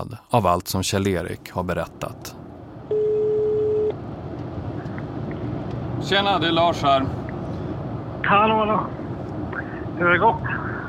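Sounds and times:
speech: 0:00.0 - 0:02.4, 0:06.0 - 0:07.2, 0:08.2 - 0:09.0, 0:10.0 - 0:10.6
constant low rumble: 0:00.0 - 0:10.8
telephone ringing tone while placing a call: 0:02.9 - 0:04.0.

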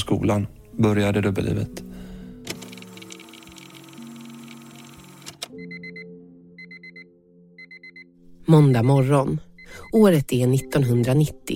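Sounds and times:
speech: 0:00.1 - 0:01.8, 0:08.5 - 0:11.5
alarm clock beeping in a bedroom: 0:02.7 - 0:11.3.

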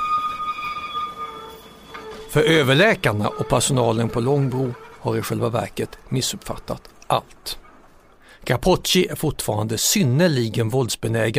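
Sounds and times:
metallic screech: 0:00.0 - 0:08.0
tram wheels squealing on rails in Stockholm: 0:00.0 - 0:08.6
speech: 0:02.3 - 0:07.6, 0:08.4 - 0:11.3.

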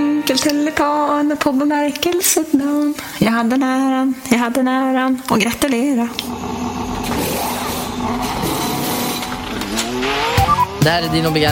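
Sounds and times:
speech: 0:00.3 - 0:06.6, 0:10.8 - 0:11.4
Formula 1 race car accelerating at high speed: 0:06.3 - 0:11.4.

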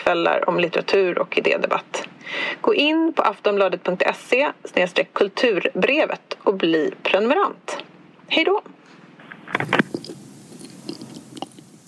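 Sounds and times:
speech: 0:00.0 - 0:08.9
mouth smacking clicks: 0:09.6 - 0:11.8
wet chewing of gum: 0:09.6 - 0:11.8.

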